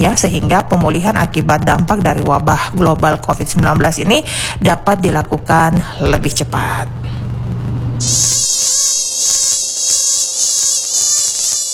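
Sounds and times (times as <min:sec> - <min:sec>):
speech: 0:00.0 - 0:09.4
low hum: 0:00.0 - 0:11.7
mosquito whining in a bedroom: 0:08.0 - 0:11.7.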